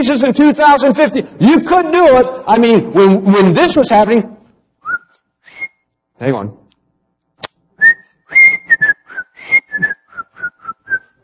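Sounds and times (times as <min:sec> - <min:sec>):
speech: 0:00.0 - 0:04.4, 0:06.2 - 0:06.6
person whistling a short bouncy tune: 0:04.8 - 0:05.8, 0:07.8 - 0:11.2.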